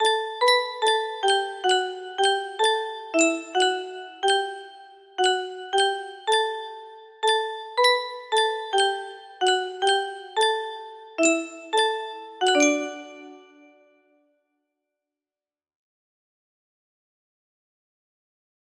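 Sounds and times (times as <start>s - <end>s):
music box melody: 0.0s - 13.8s.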